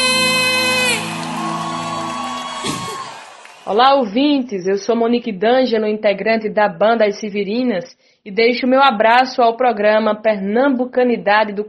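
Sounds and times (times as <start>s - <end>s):
small group whooping cheer: 0.0s - 3.8s
speech: 3.7s - 11.6s.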